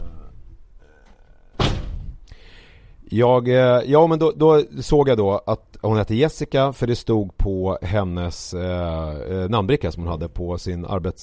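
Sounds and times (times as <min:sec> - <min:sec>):
door rattling as it settles: 0:01.5 - 0:02.1
door shut with a solid thudding slam: 0:01.5 - 0:02.2
speech: 0:03.1 - 0:11.2.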